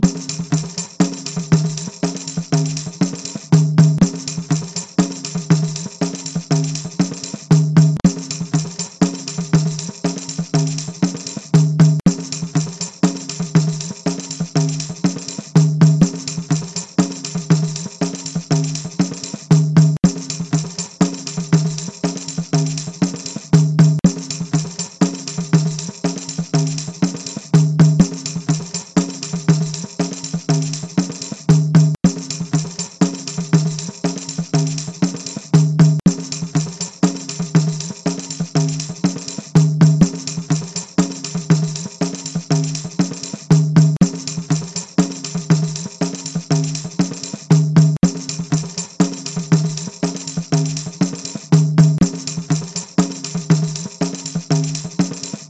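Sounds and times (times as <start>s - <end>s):
pandeiro playing batucada rhythm: 0.0s - 55.4s.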